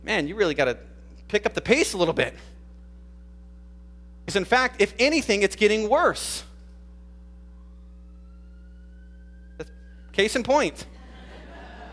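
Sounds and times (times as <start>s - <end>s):
speech: 0.0s - 2.6s, 4.3s - 6.5s, 9.6s - 10.9s
steady low electrical hum: 0.0s - 11.9s
ambulance siren wailing faintly outside: 7.5s - 10.8s
laughter: 10.9s - 11.9s.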